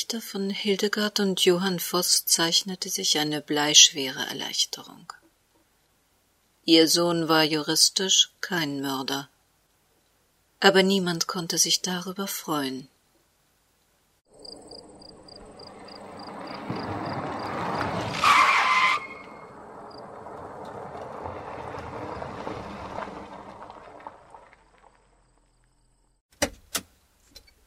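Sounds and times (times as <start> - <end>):
speech: 0.0 - 5.2, 6.6 - 9.3, 10.6 - 12.9
faint chirping insects: 13.0 - 17.8, 24.8 - 26.2
car engines rumbling and idling outdoors as vehicles pull up: 14.6 - 18.4, 19.0 - 25.7
car brakes screeching: 14.8 - 26.0.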